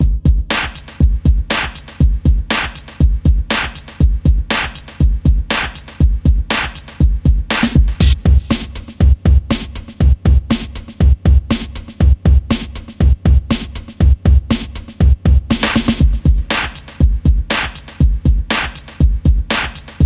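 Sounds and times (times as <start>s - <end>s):
rock RnB music: 0.0s - 20.0s.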